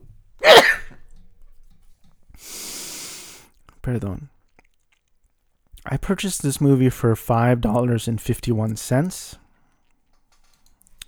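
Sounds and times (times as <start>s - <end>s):
loud explosive sneeze: 0.4s - 0.9s
speech: 3.8s - 4.4s, 5.8s - 9.4s.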